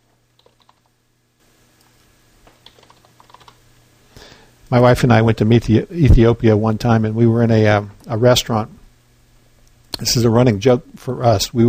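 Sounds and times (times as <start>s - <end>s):
low hum: 0.0s - 11.6s
typing on a computer keyboard: 0.4s - 0.9s, 2.6s - 3.6s
speech: 4.7s - 8.8s, 10.0s - 11.6s.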